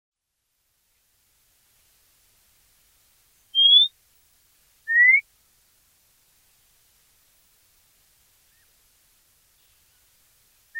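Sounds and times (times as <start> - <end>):
White monjita calling with short pure whistles: 3.5 - 3.9, 4.9 - 5.2.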